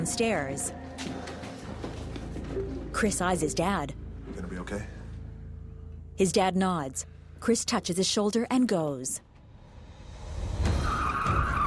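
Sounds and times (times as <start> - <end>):
speech: 0.0 - 1.2, 3.0 - 5.0, 6.2 - 9.2
sheriff's cruiser tire squeal: 10.6 - 11.6.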